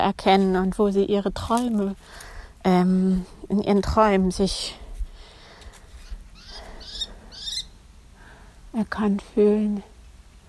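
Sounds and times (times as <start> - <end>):
speech: 0.0 - 4.8, 8.7 - 9.9
low outdoor rumble: 0.0 - 10.4
falcon calling from a tree: 6.0 - 7.8.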